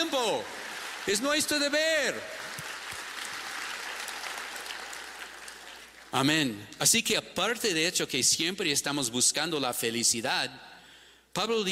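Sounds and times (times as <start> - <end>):
speech: 0.0 - 2.4, 6.1 - 10.7, 11.4 - 11.7
audience applauding: 0.0 - 6.2.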